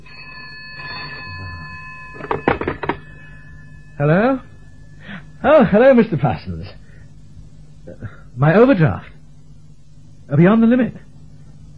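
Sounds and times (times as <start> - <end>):
telephone ringing: 0.0 - 6.4
telephone receiver lifted from its cradle: 2.2 - 3.2
speech: 4.0 - 4.5, 5.4 - 6.8, 7.9 - 9.1, 10.3 - 11.1.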